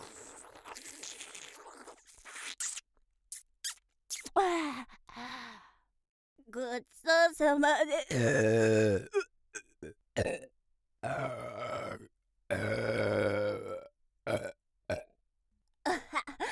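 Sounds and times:
shorter throaty bursts and gulps: 0.0 - 2.8, 8.1 - 15.1
speech: 4.4 - 4.9, 6.5 - 9.2, 10.2 - 10.4
long loud drawn-out burps: 8.1 - 15.1.

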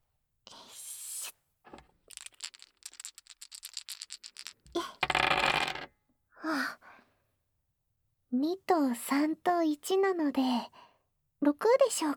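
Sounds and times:
dice rattling and clattering: 1.7 - 5.9
speech: 8.4 - 10.8, 11.4 - 12.1.

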